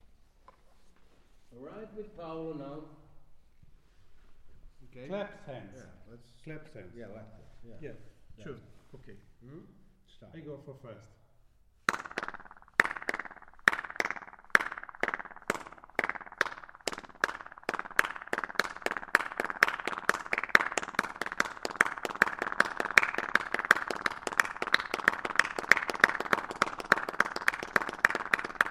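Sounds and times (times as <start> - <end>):
hands clapping: 11.9 - 28.7.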